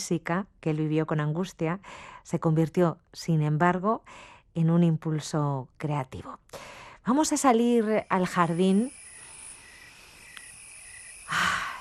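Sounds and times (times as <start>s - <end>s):
speech: 0.0s - 9.0s
crickets chirping outdoors in a garden: 7.1s - 11.7s
cicadas trilling outdoors in a garden: 7.5s - 11.7s
faint click: 10.3s - 10.5s.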